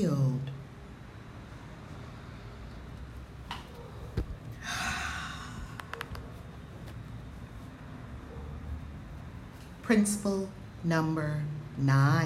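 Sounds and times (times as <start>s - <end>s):
low steady hum: 0.0s - 12.2s
deep breath: 4.5s - 5.9s
speech: 9.9s - 12.2s.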